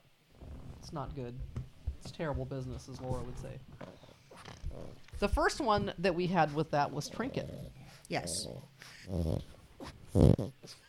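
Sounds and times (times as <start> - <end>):
speech: 0.9 - 4.1, 4.8 - 10.8
dog snorting into a microphone: 3.8 - 5.2, 6.3 - 10.8.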